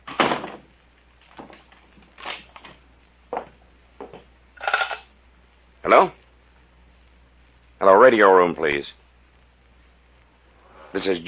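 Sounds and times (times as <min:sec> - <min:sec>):
cabin door shutting with a thud: 0:00.1 - 0:00.7
speech: 0:05.9 - 0:06.2, 0:08.1 - 0:09.0, 0:10.9 - 0:11.2.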